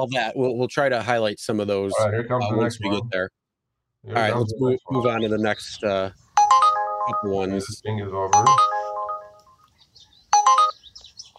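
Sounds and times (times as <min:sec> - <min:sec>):
faint noise: 0:00.0 - 0:03.4, 0:04.0 - 0:11.3
speech: 0:00.0 - 0:03.4, 0:04.0 - 0:08.7
bright electronic trip-request alert chime from a rideshare driver app: 0:04.9 - 0:05.3, 0:06.4 - 0:09.6, 0:10.4 - 0:10.8.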